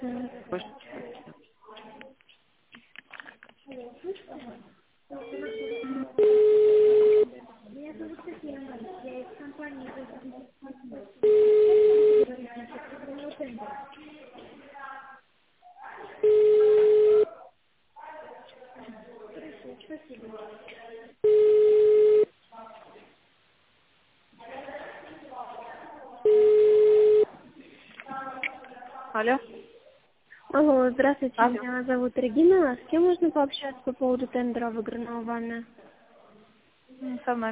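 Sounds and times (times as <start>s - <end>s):
speech: 0.5s - 0.8s, 31.3s - 35.8s, 37.3s - 37.5s
ringing tones on a telephone call being transferred: 5.1s - 7.3s, 11.2s - 12.3s, 16.2s - 17.3s, 21.2s - 22.3s, 26.3s - 27.3s.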